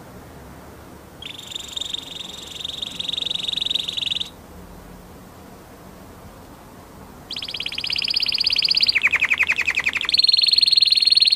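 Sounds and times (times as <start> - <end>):
orange canary trill: 1.2 - 4.4, 7.3 - 11.3.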